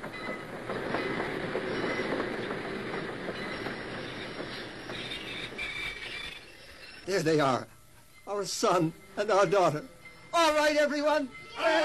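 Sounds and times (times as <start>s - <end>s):
train pulling into a station rumbling: 0.0s - 10.1s
metallic squealing of train: 3.4s - 7.4s
speech: 7.1s - 7.7s, 8.3s - 11.8s.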